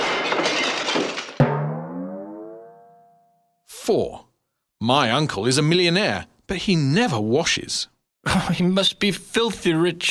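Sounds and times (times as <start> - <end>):
crockery crashing and clattering: 0.0 - 2.4
plate smashing with ringing tone: 0.0 - 3.6
speech: 3.9 - 10.0.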